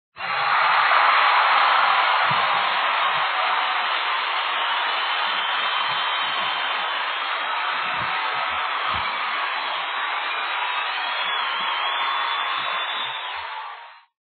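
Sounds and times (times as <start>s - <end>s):
idol cheer: 0.1s - 14.2s.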